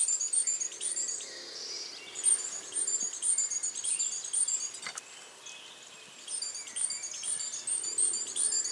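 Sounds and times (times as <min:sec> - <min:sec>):
great tit Parus major high thin chirps: 0:00.0 - 0:08.7.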